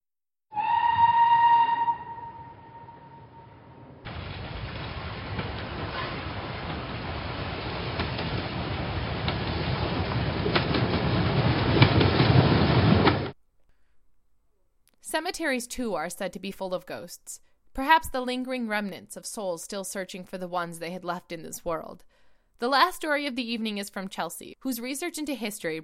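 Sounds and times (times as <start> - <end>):
train whistle: 0.5 - 3.8
train rolling past on the rails: 0.6 - 13.4
speech: 15.1 - 25.8.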